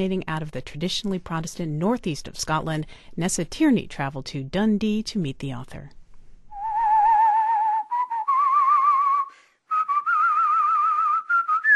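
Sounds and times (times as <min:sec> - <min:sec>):
speech: 0:00.0 - 0:06.0
man whistling a slow tune of long held notes: 0:06.5 - 0:11.7.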